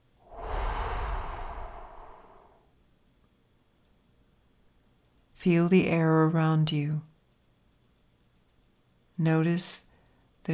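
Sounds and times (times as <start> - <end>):
long deep breath blown out: 0.3 - 2.6
speech: 5.4 - 7.1, 9.2 - 9.8.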